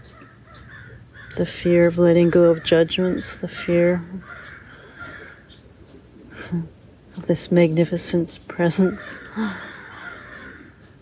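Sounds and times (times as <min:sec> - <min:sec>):
crows cawing while mobbing an eagle: 0:00.0 - 0:01.4, 0:02.2 - 0:03.4, 0:04.1 - 0:05.6, 0:08.9 - 0:11.0
steady hiss: 0:00.0 - 0:11.0
speech: 0:01.4 - 0:04.4, 0:06.5 - 0:09.7.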